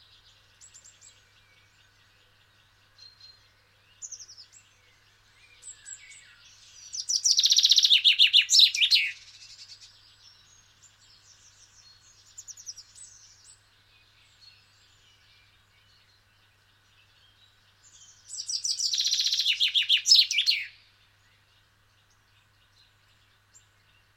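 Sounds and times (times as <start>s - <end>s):
common chaffinch Fringilla coelebs singing: 0.0s - 24.1s.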